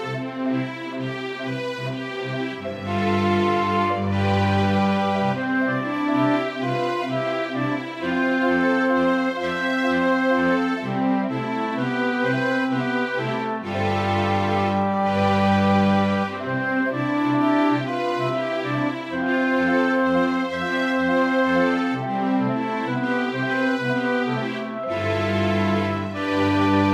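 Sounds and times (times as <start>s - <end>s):
cinematic music: 0.2s - 26.9s.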